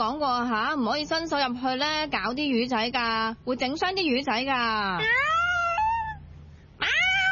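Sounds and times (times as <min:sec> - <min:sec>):
speech: 0:00.0 - 0:05.4
pet cat meowing: 0:05.0 - 0:06.2, 0:06.8 - 0:07.3.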